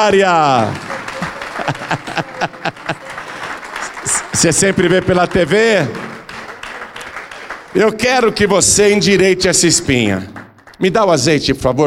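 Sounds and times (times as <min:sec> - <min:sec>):
speech: 0:00.0 - 0:00.9, 0:01.6 - 0:03.0, 0:04.3 - 0:06.1, 0:07.7 - 0:11.8
laughter: 0:00.0 - 0:05.4
audience clapping in rhythm: 0:00.0 - 0:11.4
dense crowd murmur: 0:00.6 - 0:04.4.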